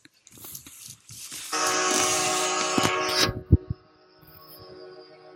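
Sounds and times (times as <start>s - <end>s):
goal horn: 1.6s - 3.7s.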